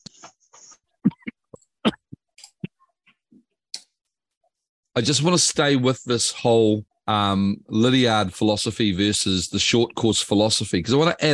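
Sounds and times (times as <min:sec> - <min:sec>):
person coughing: 0:01.1 - 0:02.2
speech: 0:05.0 - 0:11.3.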